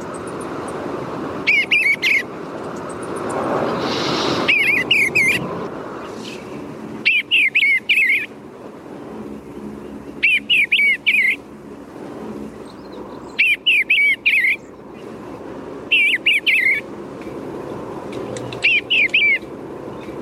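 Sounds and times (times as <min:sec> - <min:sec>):
male eastern bluebird chortling song: 0:01.4 - 0:08.4, 0:09.4 - 0:11.5, 0:12.5 - 0:15.2, 0:15.9 - 0:16.9, 0:17.6 - 0:20.2.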